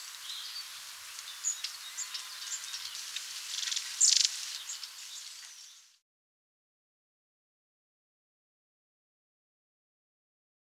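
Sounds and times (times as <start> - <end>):
long-tailed tit giving a rippling buzzy high call: 0.0 - 6.0.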